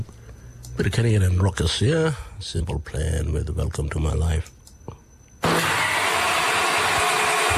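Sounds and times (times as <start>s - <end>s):
speech: 0.8s - 4.6s
car engine cranking without catching: 5.4s - 7.5s.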